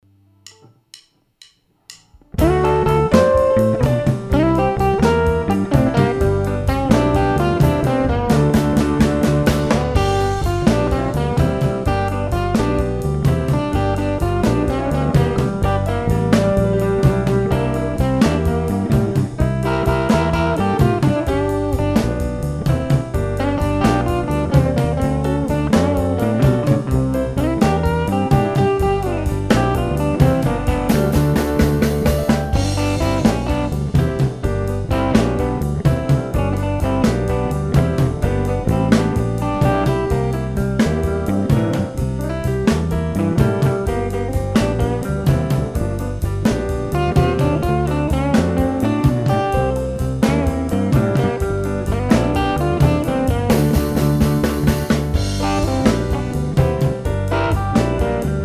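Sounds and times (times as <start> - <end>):
rumba music with ending: 2.3 - 58.4.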